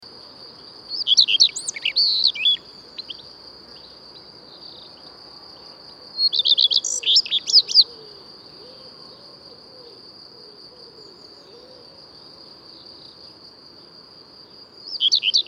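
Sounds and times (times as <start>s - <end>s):
Common redstart singing: 0.9s - 4.0s, 6.2s - 8.0s, 14.9s - 15.4s.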